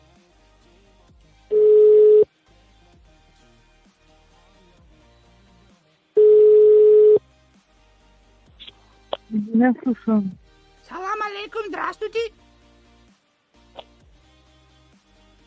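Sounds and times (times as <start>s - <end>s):
telephone ringback tone on an outgoing call: 1.5s - 2.3s, 6.2s - 7.2s
speech: 9.6s - 10.4s.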